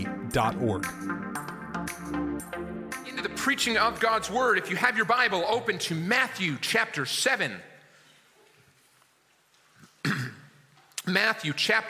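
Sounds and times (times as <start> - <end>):
speech: 0.0 - 1.2, 3.4 - 7.7, 11.1 - 11.8
rough gravelly throat clearing: 9.8 - 10.6.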